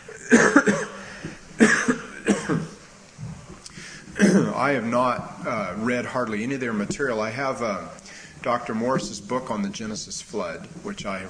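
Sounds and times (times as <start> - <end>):
person with a troubled throat coughing: 0.2 - 1.0, 1.6 - 2.8, 4.2 - 4.6
speech: 4.6 - 11.2.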